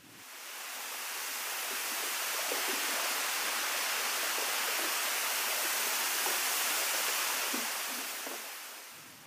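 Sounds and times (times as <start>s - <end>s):
water gurgling and trickling: 0.0s - 9.0s
glacial meltwater rushing: 0.0s - 9.1s.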